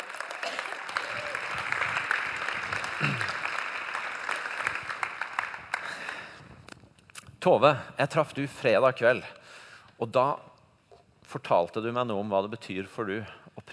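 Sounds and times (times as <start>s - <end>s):
crowd applauding: 0.0s - 6.4s
speech: 7.4s - 10.5s, 11.3s - 13.4s.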